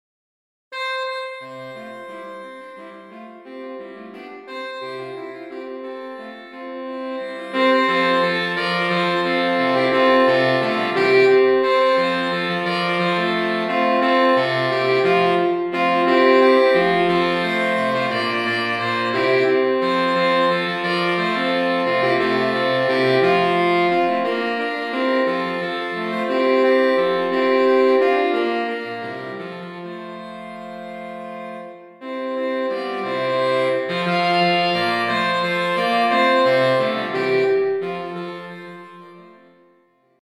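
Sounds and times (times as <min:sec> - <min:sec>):
saxophone quintet: 0:00.7 - 0:40.2.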